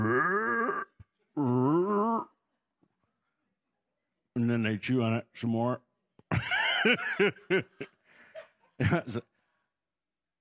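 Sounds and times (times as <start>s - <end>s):
person imitating a cow's moo: 0.0s - 2.4s
speech: 4.4s - 8.0s, 8.8s - 9.3s
laughter: 6.3s - 9.3s.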